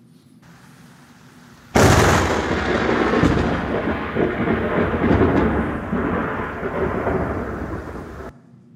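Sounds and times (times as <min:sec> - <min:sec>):
thunderclap from a lightning strike rolling into a heavy rumble: 0:01.7 - 0:08.3.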